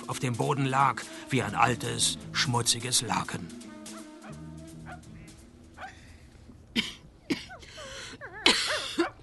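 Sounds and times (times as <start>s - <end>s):
speech: 0.1s - 3.7s
woman coughing: 6.7s - 9.2s.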